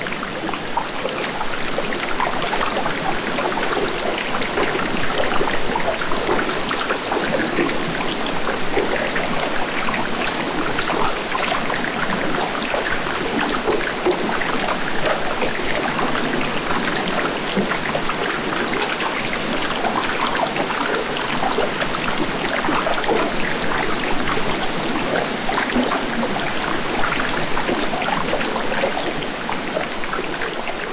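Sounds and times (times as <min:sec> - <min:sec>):
underwater bubbles popping as glacial ice melts: 0:00.0 - 0:30.9.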